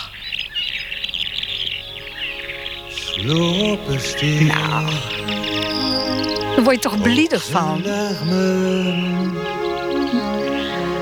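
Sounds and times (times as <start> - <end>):
small birds chirping and twittering on a Sunday morning: 0.0 - 11.0
speech: 3.2 - 9.6.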